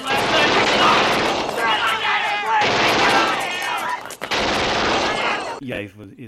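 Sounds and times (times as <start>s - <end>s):
rifle gunfire from a shiny new gun: 0.1s - 3.8s, 4.3s - 5.6s
speech: 5.7s - 6.2s.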